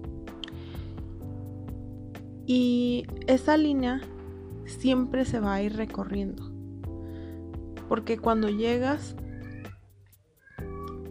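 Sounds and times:
speech: 2.5s - 6.5s, 7.9s - 9.2s
pet cat meowing: 9.2s - 11.1s.

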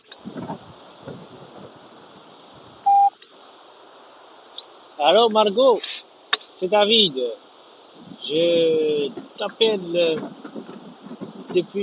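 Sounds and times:
hissy phone-line background: 2.8s - 3.2s
telephone beep signalling voicemail recording: 2.9s - 3.1s
speech: 5.0s - 5.9s, 6.6s - 7.5s, 8.3s - 10.4s, 11.5s - 11.8s.

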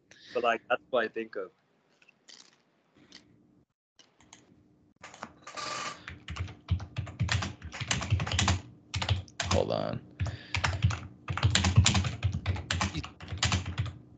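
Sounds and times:
speech: 0.4s - 1.6s, 9.7s - 10.1s
loud rapid computer keyboard typing: 5.0s - 14.1s.

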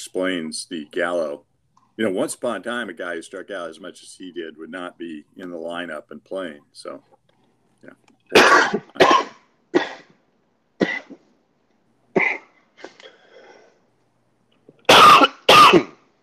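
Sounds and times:
speech: 0.0s - 7.2s, 7.8s - 9.0s
person choking and hacking coughs: 8.3s - 10.2s, 10.8s - 11.2s, 12.2s - 13.1s, 14.8s - 16.0s.

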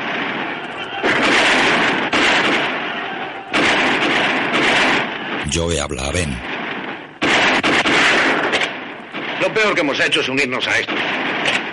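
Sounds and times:
artillery blasts at Veracruz fortifications: 0.0s - 11.7s
battle gunfire at Veracruz fortifications: 0.0s - 11.7s
speech: 5.6s - 6.6s, 9.4s - 11.0s.

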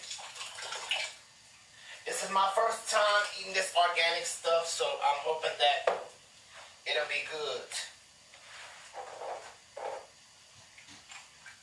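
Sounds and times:
water pouring into a cooking pot holding ingredients: 0.0s - 1.3s
speech: 2.3s - 6.1s, 6.9s - 7.9s.

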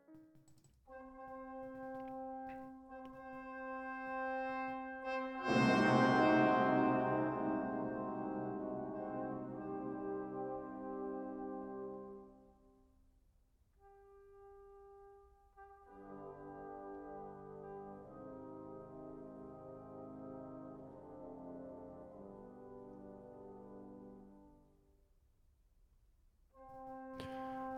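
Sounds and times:
slow orchestral opera prelude music: 3.1s - 12.0s.

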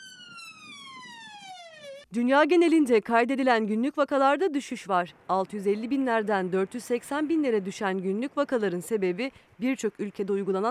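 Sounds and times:
ambulance siren wailing: 0.0s - 2.1s
speech: 2.1s - 10.6s.

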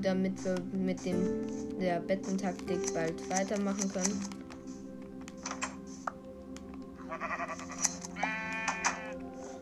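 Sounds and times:
speech: 0.0s - 4.4s
keyboard clicks: 0.4s - 7.0s
video game sheep bleating while being sheared: 7.0s - 9.2s.

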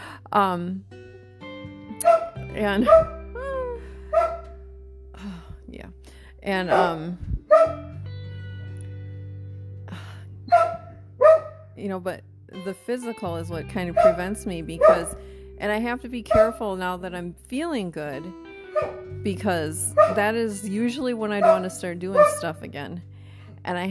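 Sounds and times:
speech: 0.3s - 1.0s, 2.0s - 3.2s, 5.7s - 7.8s, 11.8s - 23.9s
dog barking hoarsely in short raspy bursts: 2.0s - 3.2s, 4.1s - 4.5s, 6.7s - 7.8s, 10.5s - 11.7s, 14.0s - 14.2s, 14.8s - 15.2s, 18.8s - 19.1s, 20.0s - 20.3s, 21.4s - 22.4s.

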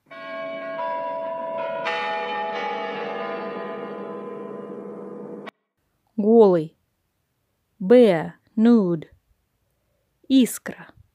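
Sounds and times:
bells chiming: 0.1s - 5.5s
speech: 6.2s - 6.8s, 7.9s - 9.2s, 10.3s - 11.0s.

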